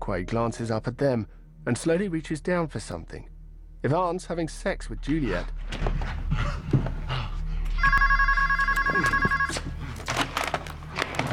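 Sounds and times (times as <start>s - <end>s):
speech: 0.1s - 6.8s
telephone ringing with an electronic warbling tone: 7.8s - 9.8s
rustling and clattering: 9.0s - 11.3s.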